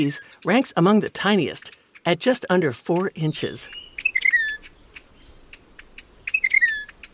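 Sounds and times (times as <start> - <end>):
speech: 0.0 - 3.9
white-bellied wren song: 0.0 - 7.1.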